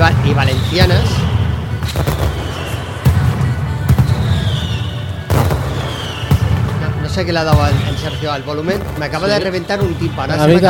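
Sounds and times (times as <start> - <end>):
dense barrage of firecrackers at a Valencian fallas mascletà: 0.0 - 10.6
whistling rockets rising: 0.0 - 10.6
speech: 0.3 - 1.3, 1.9 - 2.4, 7.2 - 10.6.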